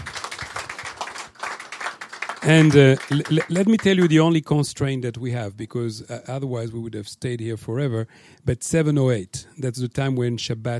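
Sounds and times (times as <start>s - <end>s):
audience applauding a panel: 0.0s - 4.3s
speech: 2.4s - 10.7s.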